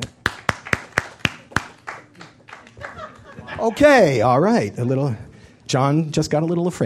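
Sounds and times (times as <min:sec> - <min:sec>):
sharp evenly spaced hand claps: 0:00.0 - 0:03.4
laughter: 0:02.6 - 0:04.3
speech: 0:03.6 - 0:06.8.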